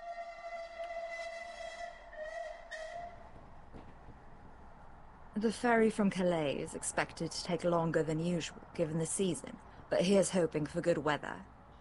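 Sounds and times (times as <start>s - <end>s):
steam train whistle: 0.0s - 3.3s
low rumble of moving train: 0.0s - 11.7s
speech: 5.4s - 11.5s.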